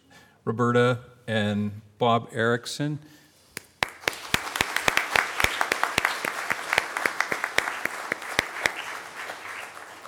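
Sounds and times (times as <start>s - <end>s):
speech: 0.5s - 3.2s
sharp individual claps: 3.5s - 10.0s
room full of people applauding: 3.8s - 10.0s.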